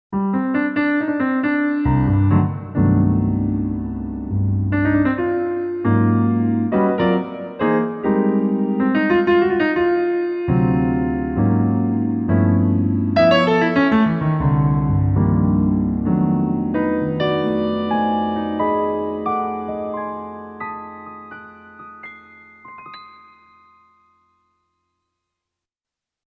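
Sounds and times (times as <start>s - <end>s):
Roland U-220 A piano on XP-80: 0.1s - 25.0s.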